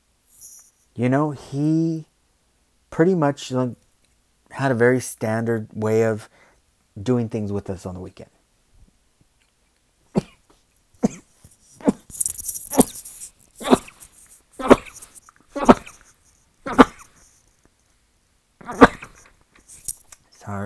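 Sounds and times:
speech: 0:01.0 - 0:02.1, 0:03.0 - 0:03.8, 0:04.5 - 0:06.4, 0:07.0 - 0:08.4
person sneezing set off by dust: 0:10.1 - 0:10.4, 0:11.0 - 0:12.1, 0:12.7 - 0:13.0, 0:13.6 - 0:14.0, 0:14.6 - 0:16.0, 0:16.6 - 0:17.2, 0:18.6 - 0:19.3.

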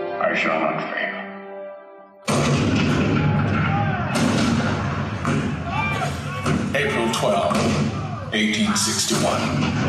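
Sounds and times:
speech: 0:00.2 - 0:01.2, 0:08.3 - 0:09.8
cannon fire: 0:02.3 - 0:08.3.

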